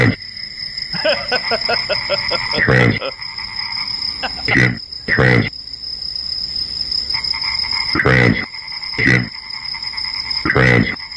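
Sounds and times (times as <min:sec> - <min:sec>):
frogs croaking: 0:00.0 - 0:11.1
laughter: 0:01.0 - 0:03.2, 0:04.2 - 0:04.6
speech: 0:01.0 - 0:03.3, 0:04.5 - 0:05.6.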